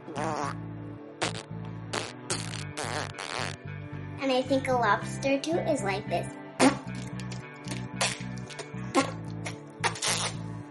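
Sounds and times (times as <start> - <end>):
voice imitating a rat farting: 0.0 - 0.6, 1.2 - 3.6, 6.6 - 10.5
speech: 0.2 - 0.7, 4.3 - 6.4.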